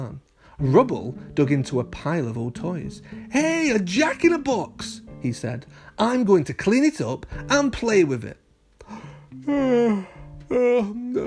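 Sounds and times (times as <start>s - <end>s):
speech: 0.6s - 8.4s, 9.3s - 11.2s
voiced yawns with a sleepy groan: 8.8s - 11.2s.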